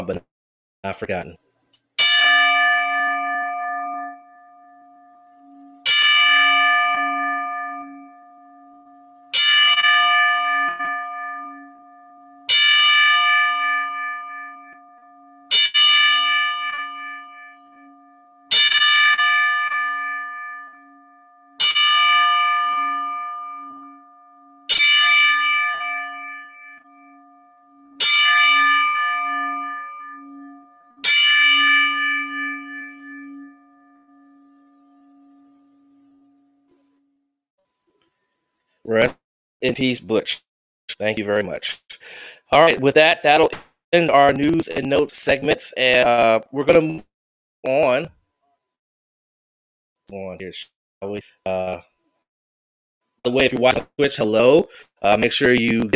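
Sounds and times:
speech: 0:00.0 - 0:01.4, 0:38.9 - 0:48.2, 0:50.1 - 0:51.9, 0:53.2 - 0:55.9
bell tolling in memory: 0:02.0 - 0:36.6.

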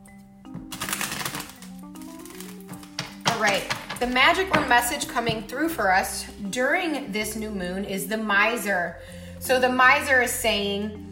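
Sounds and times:
riffle of cards being shuffled: 0:00.7 - 0:04.2
speech: 0:03.4 - 0:11.0.

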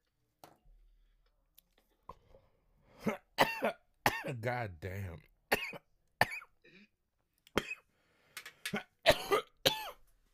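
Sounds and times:
person coughing: 0:03.0 - 0:04.4, 0:05.5 - 0:06.9, 0:07.6 - 0:07.9, 0:08.7 - 0:10.0
speech: 0:04.3 - 0:05.3.

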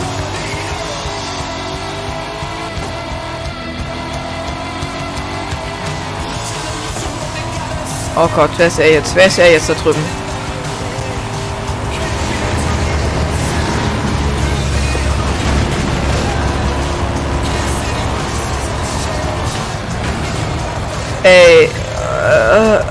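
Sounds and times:
sports car engine revving in a racing video game: 0:00.0 - 0:22.8
tire squeal in a racing video game: 0:00.0 - 0:22.8
speech: 0:08.2 - 0:10.2, 0:21.2 - 0:21.8.

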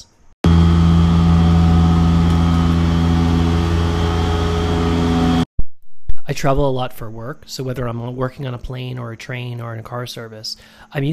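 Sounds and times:
street-cleaning truck engine drone on a city avenue: 0:00.4 - 0:05.4
street-cleaning truck humming whine: 0:00.4 - 0:06.2
speech: 0:06.3 - 0:11.1.

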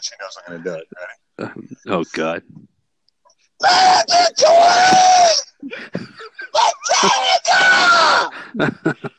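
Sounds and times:
speech: 0:00.0 - 0:02.7, 0:03.6 - 0:09.1
man screaming: 0:03.6 - 0:05.6, 0:06.4 - 0:08.4
laughter: 0:05.6 - 0:07.2, 0:08.3 - 0:09.1.

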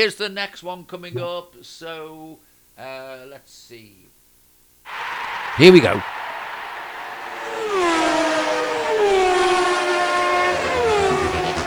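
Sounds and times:
speech: 0:00.0 - 0:04.1, 0:04.9 - 0:06.2
cars of football referees rushing past toward a new facility: 0:04.9 - 0:11.6.

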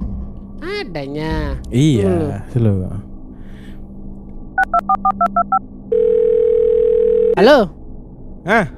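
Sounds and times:
low hum: 0:00.0 - 0:08.7
speech: 0:00.6 - 0:03.1, 0:04.8 - 0:06.2, 0:07.4 - 0:07.8, 0:08.4 - 0:08.7
telephone keypad beeps dialing a number: 0:04.6 - 0:05.6
loud steady telephone tone: 0:05.0 - 0:07.4.

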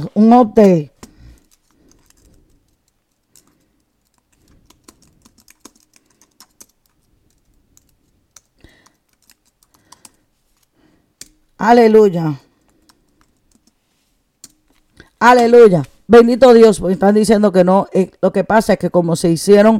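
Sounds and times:
speech: 0:00.0 - 0:00.9, 0:11.6 - 0:12.4, 0:15.2 - 0:19.7
computer keyboard keys clicking while typing: 0:01.0 - 0:11.5, 0:12.6 - 0:13.8, 0:14.4 - 0:15.5.

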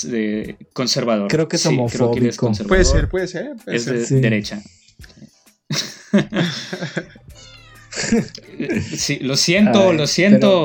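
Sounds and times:
speech: 0:00.0 - 0:10.6
voices: 0:02.7 - 0:03.2
laughter: 0:05.7 - 0:07.2, 0:07.9 - 0:09.1
kitten meowing insistently: 0:07.4 - 0:07.9.

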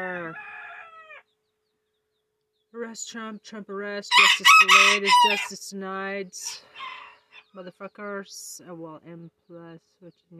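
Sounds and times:
rooster crowing: 0:00.0 - 0:01.2, 0:04.1 - 0:05.5
speech: 0:02.9 - 0:06.9, 0:07.6 - 0:10.3.

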